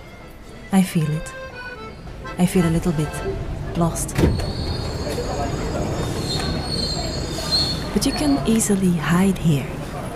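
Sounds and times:
speech: 0.7s - 1.4s, 2.4s - 4.8s, 7.9s - 9.8s
loud steady rumble of the subway carriage: 2.0s - 10.1s
subway train wheels squealing in the Paris subway: 4.3s - 8.4s.

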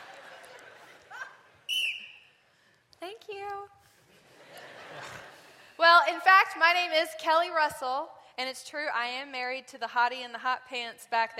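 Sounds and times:
laughter: 0.0s - 1.7s, 4.1s - 5.8s
referee whistle blast: 1.7s - 2.4s
speech: 3.2s - 3.9s, 5.8s - 11.3s.

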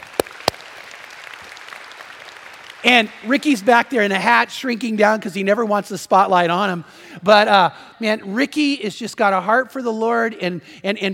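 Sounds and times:
hand claps in a church: 0.0s - 2.8s
speech: 2.8s - 11.1s.

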